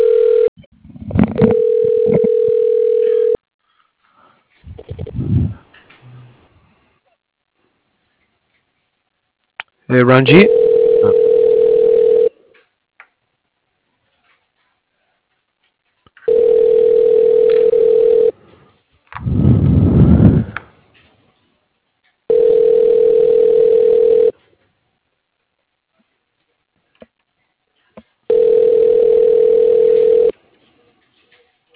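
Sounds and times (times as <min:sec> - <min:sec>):
ringback tone of an outgoing telephone call before voicemail: 0:00.0 - 0:00.5, 0:01.4 - 0:03.4, 0:10.5 - 0:12.3, 0:16.3 - 0:18.4, 0:22.3 - 0:24.3, 0:28.3 - 0:30.3
noisy rumble: 0:04.6 - 0:06.7, 0:19.2 - 0:20.6
speech: 0:10.0 - 0:10.6.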